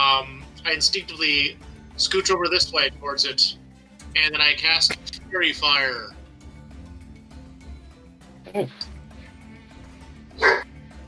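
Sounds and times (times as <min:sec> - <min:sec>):
speech: 0:00.2 - 0:03.6, 0:04.2 - 0:06.2, 0:08.5 - 0:08.9
dog barking: 0:10.4 - 0:10.7.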